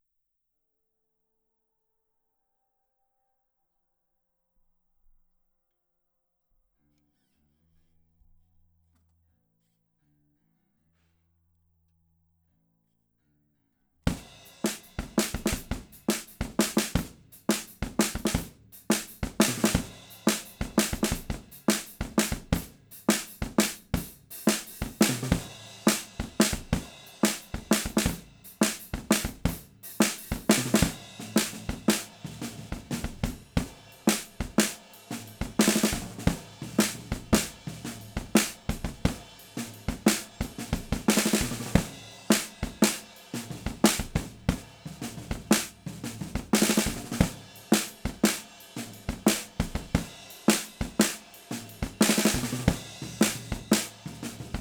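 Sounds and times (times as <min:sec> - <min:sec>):
snare drum hits: 0:14.1 - 0:54.5.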